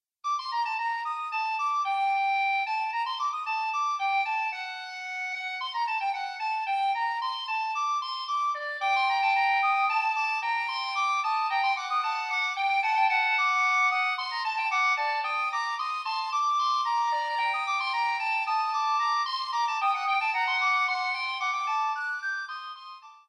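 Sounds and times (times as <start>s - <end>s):
canonic recorder duet in G minor: 0.3s - 23.2s.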